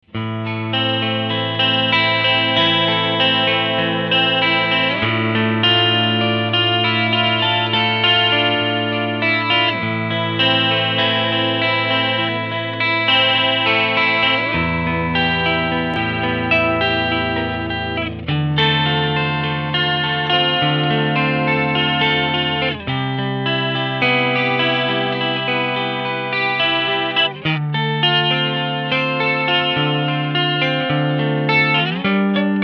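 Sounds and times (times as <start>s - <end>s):
clean electric guitar on neck single-coil pickup: 0.0s - 32.6s.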